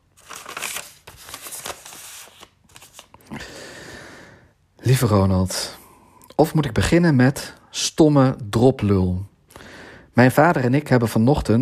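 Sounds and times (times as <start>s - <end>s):
paper letter rustling and crinkling as it is folded into a diary: 0.0s - 3.3s
speech: 4.8s - 5.8s, 6.4s - 9.3s, 10.2s - 11.6s.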